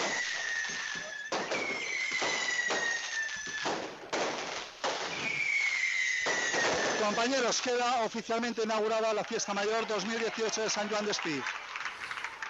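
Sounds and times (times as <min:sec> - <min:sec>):
fireworks rockets cracking and booming at a town Fiesta Mayor festival: 0:00.0 - 0:12.4
speech: 0:07.1 - 0:11.6.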